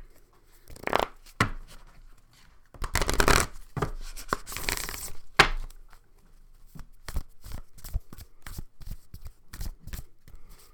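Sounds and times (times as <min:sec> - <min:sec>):
deck of cards being shuffled with riffling and slapping: 0:00.6 - 0:01.8, 0:02.8 - 0:05.8, 0:06.7 - 0:10.1.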